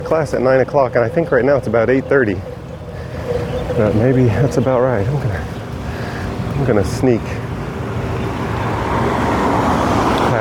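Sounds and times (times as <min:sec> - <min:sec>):
cars lined up in the road waiting to enter a parking garage driveway: 0:00.0 - 0:10.3
speech: 0:00.1 - 0:02.6, 0:03.7 - 0:05.6, 0:06.6 - 0:07.4.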